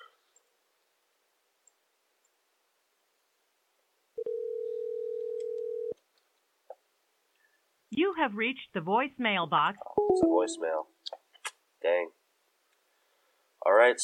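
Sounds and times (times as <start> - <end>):
ringback tone of an unanswered outgoing telephone call: 4.2 - 5.9
speech: 8.0 - 11.0, 13.6 - 14.0.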